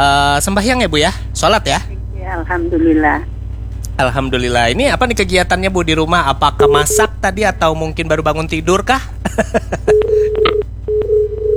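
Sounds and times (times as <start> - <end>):
speech: 0.0 - 3.3, 4.0 - 10.6
telephone tone after a call was cut off: 6.6 - 7.1, 9.9 - 11.5
laughter: 6.7 - 10.5.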